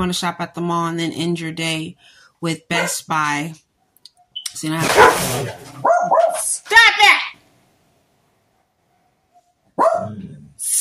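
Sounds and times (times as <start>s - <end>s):
speech: 0.0s - 3.6s, 4.6s - 7.2s
dog barking: 2.7s - 3.0s, 4.8s - 6.4s, 9.8s - 10.2s.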